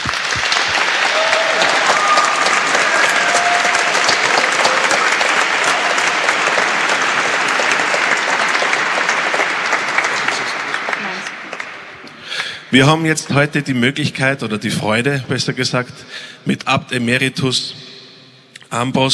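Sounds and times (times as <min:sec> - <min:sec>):
large audience applauding: 0:00.0 - 0:13.5
faint crowd murmur: 0:06.2 - 0:13.5
speech: 0:12.7 - 0:17.9, 0:18.7 - 0:19.1.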